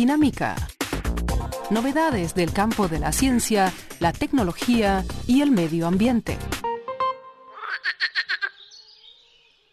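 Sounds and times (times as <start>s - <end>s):
speech: 0.0s - 0.7s, 1.7s - 6.5s
frogs or toads croaking: 7.5s - 8.8s.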